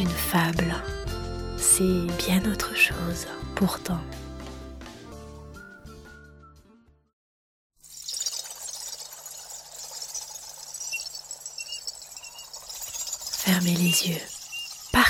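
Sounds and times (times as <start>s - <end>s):
speech: 0.0s - 1.0s, 1.7s - 4.2s, 13.6s - 14.4s
music: 0.0s - 7.2s
high whistling chirps: 8.0s - 15.0s.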